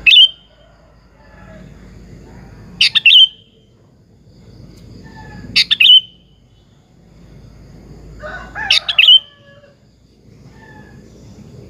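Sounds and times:
Sooty-headed bulbul chirping: 0.0s - 0.5s, 2.8s - 3.6s, 5.6s - 6.4s
low background rumble: 0.0s - 11.6s.

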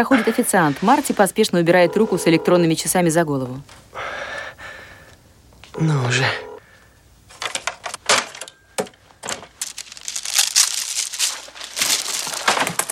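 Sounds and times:
speech: 0.0s - 4.3s, 5.8s - 6.5s
page being torn out, paper ripping and crinkling: 9.2s - 12.9s.

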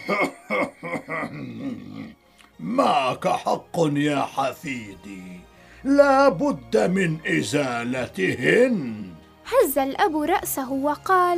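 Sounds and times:
elderly grandfather clearing his throat: 0.0s - 2.2s
speech: 0.1s - 0.3s, 2.6s - 11.3s.

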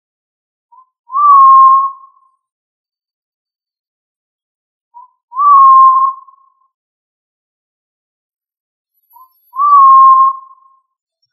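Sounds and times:
pigeon giving a soft whistled note: 1.1s - 2.2s, 5.0s - 6.4s, 9.2s - 10.7s.

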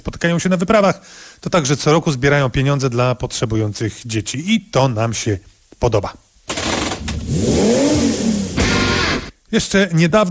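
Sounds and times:
speech: 0.0s - 6.2s, 7.3s - 8.2s, 9.5s - 10.2s
Ford Puma ST three-cylinder sports car engine revving: 6.6s - 9.3s.

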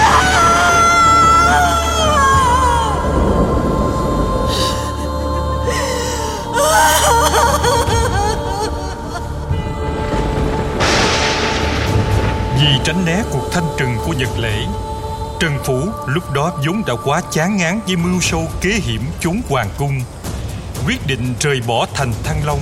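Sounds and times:
woman wailing over the bodies of her slain children at an execution ground: 0.0s - 3.1s, 4.5s - 9.8s
dense continuous low background: 0.0s - 22.6s
speech: 14.1s - 20.2s, 20.8s - 22.6s.

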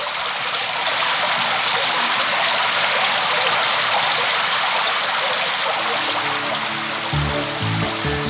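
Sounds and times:
rain falling: 0.0s - 8.2s
low tonal notes: 6.0s - 8.2s.

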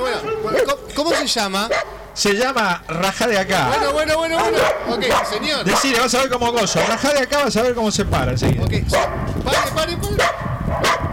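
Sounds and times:
dog barking: 0.2s - 2.0s, 3.7s - 6.0s, 6.7s - 7.1s, 8.9s - 11.1s
speech: 0.2s - 10.8s.

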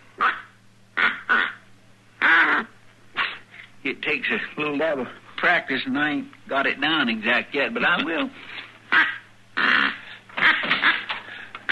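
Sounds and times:
faint steady low hum: 0.0s - 11.7s
duck call blown imitating duck quacks: 0.2s - 1.6s, 2.2s - 3.4s, 8.9s - 11.7s
speech: 4.0s - 8.5s.

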